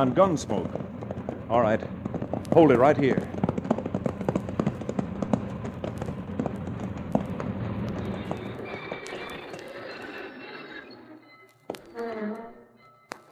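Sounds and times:
speech: 0.0s - 0.9s, 1.5s - 3.4s
horse hooves clip-clopping: 0.0s - 10.3s
rumbling background: 0.0s - 12.7s.

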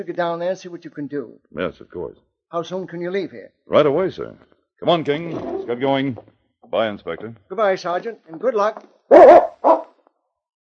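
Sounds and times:
speech: 0.0s - 9.8s
dog barking: 9.1s - 9.9s.

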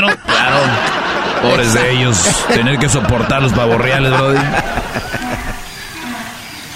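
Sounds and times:
speech: 0.0s - 5.2s
laughter: 0.0s - 6.5s
donkey braying: 3.8s - 6.6s.

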